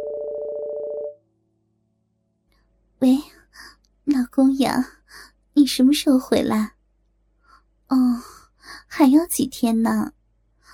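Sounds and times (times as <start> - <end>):
mobile phone ringing with an electronic trill: 0.0 - 1.2
speech: 4.4 - 6.8, 9.0 - 10.2.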